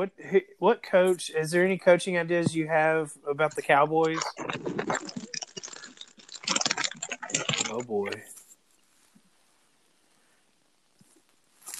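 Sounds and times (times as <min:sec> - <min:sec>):
speech: 0:00.0 - 0:05.1, 0:07.8 - 0:08.3
crunchy chewing of apples: 0:04.0 - 0:08.6, 0:11.6 - 0:11.7.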